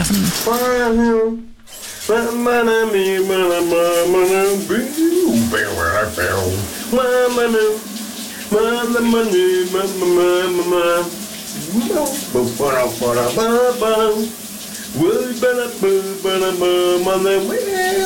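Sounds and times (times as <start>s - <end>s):
speech: 0.0s - 1.5s, 2.1s - 7.9s, 8.5s - 18.0s
running shower water spray: 0.0s - 18.0s
man singing loudly: 2.1s - 7.8s, 8.5s - 11.2s, 12.4s - 14.3s, 14.9s - 18.0s.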